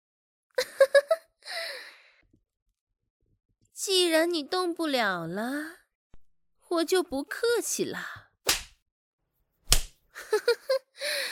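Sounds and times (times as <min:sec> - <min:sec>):
speech: 0:03.8 - 0:05.8, 0:06.7 - 0:08.2, 0:10.2 - 0:11.3
sharp slap across the face by a female demon: 0:08.5 - 0:08.8, 0:09.7 - 0:10.0.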